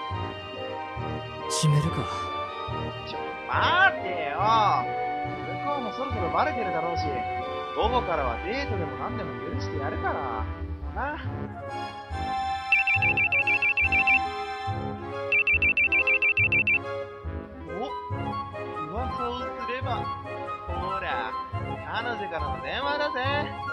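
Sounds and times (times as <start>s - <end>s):
music: 0.0s - 23.7s
speech: 1.5s - 11.5s, 22.0s - 23.7s
mobile phone ringing: 12.7s - 14.3s, 15.3s - 16.8s.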